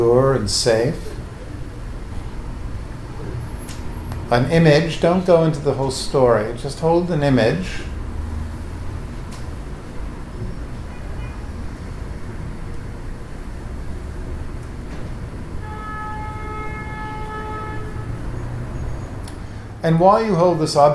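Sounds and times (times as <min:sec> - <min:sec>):
speech: 0:00.0 - 0:01.1, 0:04.3 - 0:07.9, 0:19.8 - 0:20.9
street traffic rumbling: 0:00.0 - 0:20.9
sustained car horn blaring: 0:10.9 - 0:11.6, 0:15.5 - 0:19.0.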